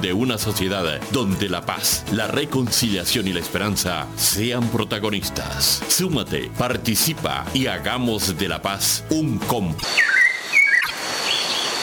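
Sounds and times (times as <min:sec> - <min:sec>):
speech: 0:00.0 - 0:10.2
mirla thrush whistling song in Colombia's Orinoquía region: 0:09.8 - 0:11.8.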